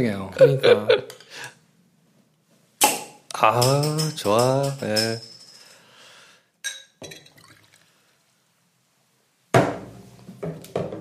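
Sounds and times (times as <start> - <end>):
speech: 0.0 - 1.5, 3.4 - 5.3
laughter: 0.4 - 1.2
bottle of ale opening pop: 2.8 - 3.2
faint glassy clinks: 3.6 - 5.8, 6.6 - 7.5
beer pouring into a glass: 7.2 - 8.0.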